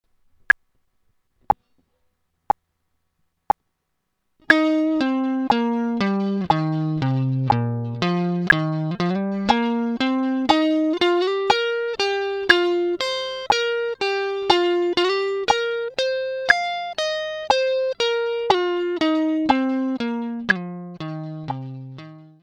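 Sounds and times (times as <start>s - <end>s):
pentatonic melody change: 4.5s - 22.3s.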